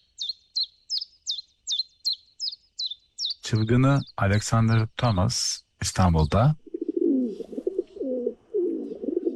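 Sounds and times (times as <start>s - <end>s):
speech: 3.5s - 6.6s
stock dove cooing: 6.6s - 9.3s.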